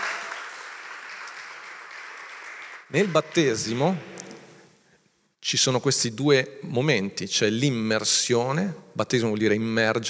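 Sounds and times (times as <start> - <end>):
audience applauding: 0.0 - 4.0
speech: 2.9 - 4.1, 5.5 - 10.0.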